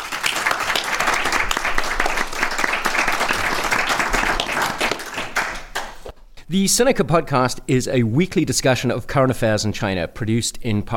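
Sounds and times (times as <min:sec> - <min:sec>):
audience applause for the hosts of a live event: 0:00.0 - 0:06.1
speech: 0:06.5 - 0:10.9.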